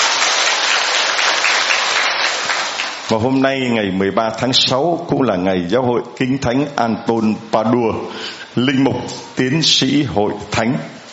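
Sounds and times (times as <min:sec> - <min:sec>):
church congregation applauding at a Catholic Mass: 0:00.0 - 0:03.3
speech: 0:03.1 - 0:11.0.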